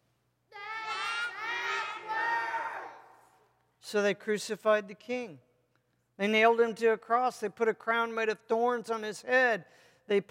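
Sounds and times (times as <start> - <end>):
large crowd shouting angrily: 0.6 - 3.1
speech: 3.9 - 5.5, 6.2 - 10.2.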